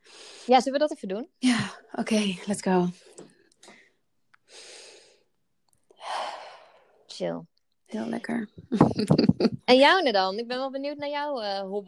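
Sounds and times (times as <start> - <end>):
speech: 0.5 - 3.1, 7.2 - 11.8
slow deep breath through the nose: 3.1 - 5.3, 5.9 - 7.0
small mouth sounds: 8.5 - 9.7
laughter: 8.7 - 9.6.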